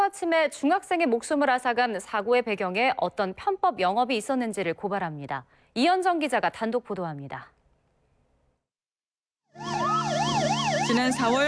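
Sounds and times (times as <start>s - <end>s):
speech: 0.1s - 7.6s, 10.9s - 11.4s
ambulance siren wailing: 9.5s - 11.4s.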